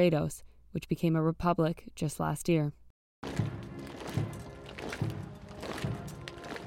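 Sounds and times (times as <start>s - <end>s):
speech: 0.0s - 3.5s
constant outdoor noise in Windsor: 3.2s - 6.6s
slow heavy thuds of a funeral rehearsal procession: 3.2s - 6.6s.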